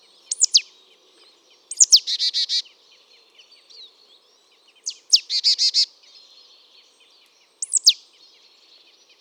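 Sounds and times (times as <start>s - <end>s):
marsh tit Poecile palustris calling: 0.3s - 0.6s, 1.7s - 2.5s, 7.6s - 8.0s.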